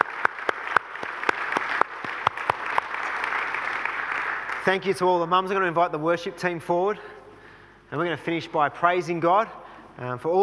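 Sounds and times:
sharper closer hand claps: 0:00.0 - 0:04.7
room full of people applauding warmly: 0:00.0 - 0:04.8
speech: 0:04.7 - 0:07.1, 0:07.9 - 0:10.4.

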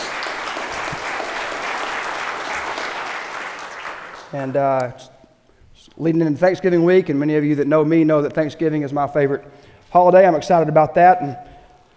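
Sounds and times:
large crowd applauding: 0:00.0 - 0:04.8
speech: 0:04.3 - 0:05.1, 0:05.8 - 0:11.5.

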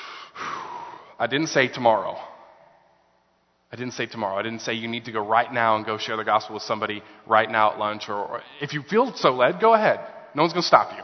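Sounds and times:
audience inhaling together on a preacher's cue: 0:00.0 - 0:01.2
speech: 0:01.2 - 0:02.3, 0:03.7 - 0:11.0.

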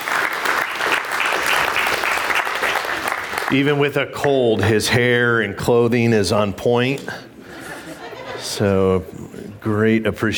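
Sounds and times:
audience applause: 0:00.0 - 0:03.8
speech: 0:03.5 - 0:07.3, 0:08.4 - 0:10.3
laughter: 0:07.5 - 0:09.0.

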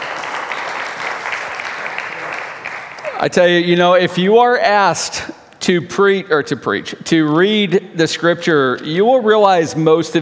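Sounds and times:
crowd applauding: 0:00.0 - 0:03.6
speech: 0:03.2 - 0:10.2.

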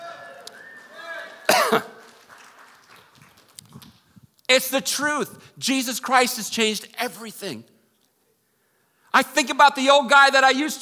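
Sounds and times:
man giving a sharp loud cough: 0:01.5 - 0:02.0
speech: 0:01.7 - 0:01.9, 0:04.5 - 0:07.7, 0:09.2 - 0:10.8.

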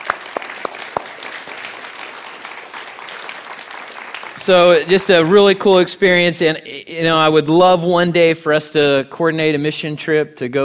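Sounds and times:
small group applauding: 0:00.0 - 0:05.7
speech: 0:04.4 - 0:10.6.

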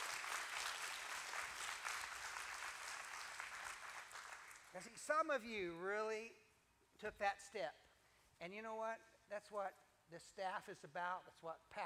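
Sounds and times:
congregation clapping hands at a church service: 0:00.0 - 0:05.0
speech: 0:04.7 - 0:06.4, 0:07.0 - 0:07.8, 0:08.4 - 0:11.8.

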